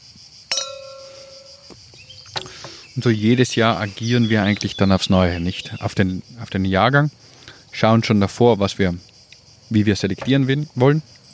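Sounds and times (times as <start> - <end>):
wine glasses clinking in a toast during a wine tasting: 0.5 - 1.8
speech: 3.0 - 9.1, 9.7 - 11.2.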